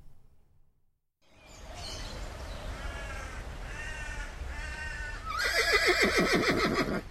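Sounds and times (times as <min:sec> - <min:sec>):
horse whinnying: 0:05.2 - 0:07.0.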